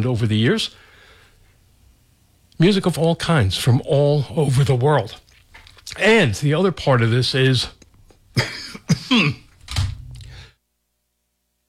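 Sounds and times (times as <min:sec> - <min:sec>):
speech: 0:00.0 - 0:00.9, 0:02.6 - 0:05.2, 0:05.9 - 0:07.8, 0:08.4 - 0:09.4
person coughing: 0:08.4 - 0:09.5
voiced rasping throat clearing: 0:08.4 - 0:09.5.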